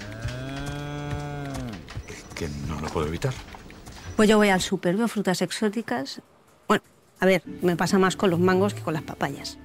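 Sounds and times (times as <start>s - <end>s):
cow mooing: 0.0s - 1.8s
speech: 2.4s - 3.6s, 4.2s - 9.6s.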